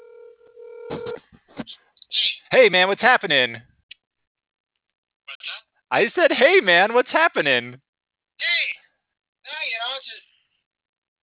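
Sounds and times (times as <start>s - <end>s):
telephone tone played from a handset: 0.0s - 1.2s
speech: 0.9s - 1.8s, 2.5s - 3.7s, 5.9s - 7.8s.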